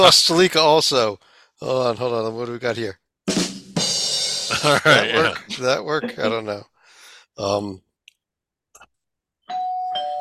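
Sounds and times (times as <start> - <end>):
speech: 0.0 - 3.0, 4.6 - 6.7, 7.4 - 7.8
laughter: 4.5 - 6.6
doorbell chiming: 9.5 - 10.1.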